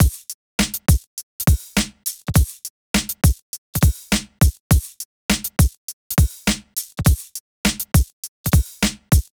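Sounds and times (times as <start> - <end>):
drums in F minor: 0.0 - 9.3.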